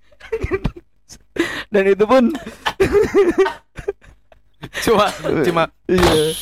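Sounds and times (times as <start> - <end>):
speech: 1.7 - 3.6, 4.8 - 6.4
person coughing with rough voiced coughs: 2.3 - 3.7, 4.9 - 5.7
laughter: 2.3 - 5.5.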